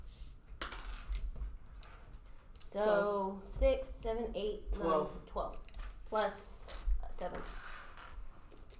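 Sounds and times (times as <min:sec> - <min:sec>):
dice rolling on a table during a game: 0:00.6 - 0:01.5, 0:07.3 - 0:08.3
speech: 0:02.7 - 0:06.5, 0:07.2 - 0:07.6.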